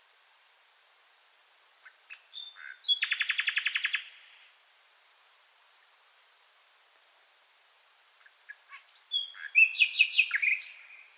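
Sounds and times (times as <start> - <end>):
Common nightingale singing, Luscinia megarhynchos: 1.8 - 4.5, 8.2 - 11.1.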